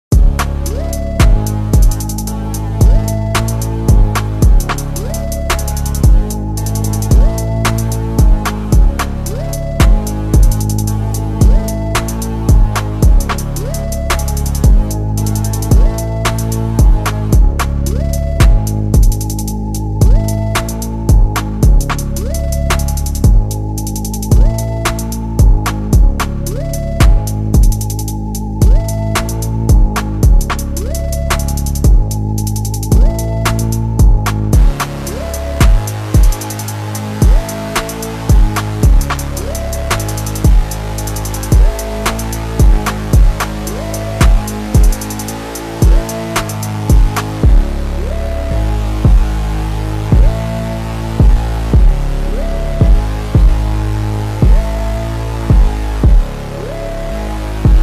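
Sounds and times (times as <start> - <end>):
slowed instrumental music with reverb: 0.1 - 57.8.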